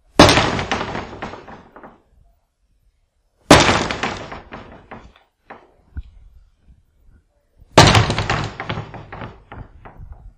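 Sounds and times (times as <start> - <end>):
knocks on a garage door: 0.1 - 2.0, 3.5 - 5.6, 7.8 - 10.3.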